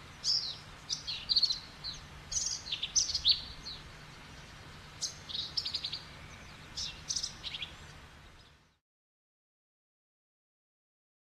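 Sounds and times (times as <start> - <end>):
birds chirping and twittering in Texas in the afternoon: 0.0 - 8.8
low background hum: 0.0 - 8.8.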